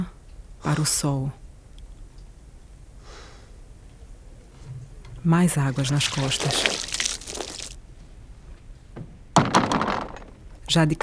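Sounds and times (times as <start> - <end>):
speech: 0.6 - 1.4, 5.2 - 6.8, 10.7 - 11.0
soft rustling scrape: 5.5 - 7.8.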